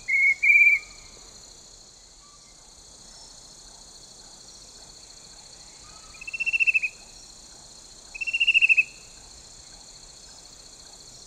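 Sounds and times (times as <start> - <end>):
Chestnut-breasted cuckoo whistles and pulsed trills: 0.0 - 1.0, 6.2 - 7.0, 8.2 - 9.0
constant high-pitched insect hum: 0.0 - 11.2.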